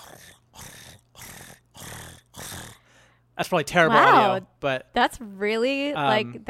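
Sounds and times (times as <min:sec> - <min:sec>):
bird purring in tree branches: 0:00.0 - 0:02.8
speech: 0:03.4 - 0:06.4.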